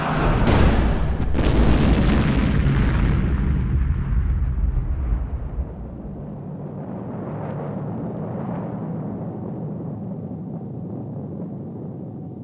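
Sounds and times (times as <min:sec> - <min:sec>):
deafening grenade explosion: 0:00.0 - 0:08.5.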